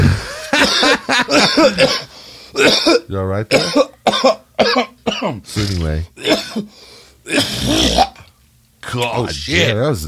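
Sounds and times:
person coughing harshly: 0:00.0 - 0:06.7, 0:07.3 - 0:08.3
speech: 0:00.8 - 0:08.2, 0:08.8 - 0:10.0.

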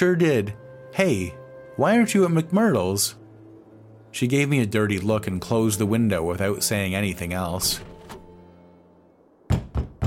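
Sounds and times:
speech: 0:00.0 - 0:03.2, 0:04.1 - 0:07.9
knocking on a door: 0:09.5 - 0:10.0.

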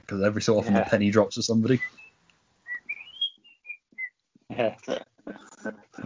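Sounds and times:
speech: 0:00.1 - 0:02.0
person whistling a jaunty march-like tune: 0:02.7 - 0:04.2.

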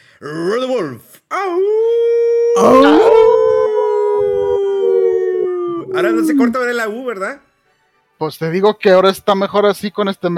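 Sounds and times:
speech: 0:00.2 - 0:01.7, 0:02.6 - 0:03.0, 0:06.2 - 0:07.5, 0:08.2 - 0:10.3
dog howling: 0:02.5 - 0:07.0.

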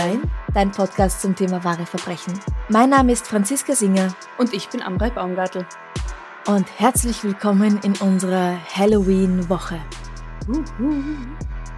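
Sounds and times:
speech: 0:00.0 - 0:11.5
voice imitating an owl hooting: 0:10.5 - 0:11.4.

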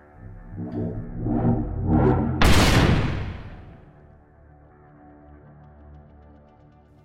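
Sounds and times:
low rumbling: 0:00.0 - 0:04.1
loud grenade explosion: 0:02.3 - 0:04.0.

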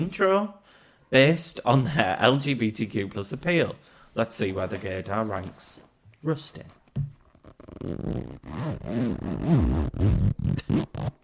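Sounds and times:
speech: 0:00.0 - 0:11.2
zipper being pulled open: 0:07.2 - 0:11.2.

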